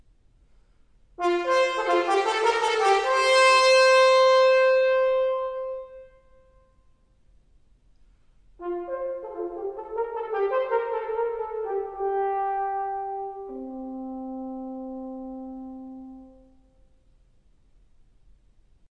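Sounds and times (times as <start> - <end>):
horn playing: 1.2 - 6.6, 8.6 - 16.8.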